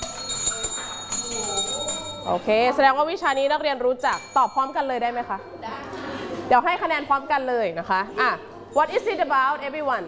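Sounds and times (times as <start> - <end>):
quiz bell dinging in a classroom: 0.0 - 5.6
speech: 2.2 - 5.8, 6.5 - 10.0.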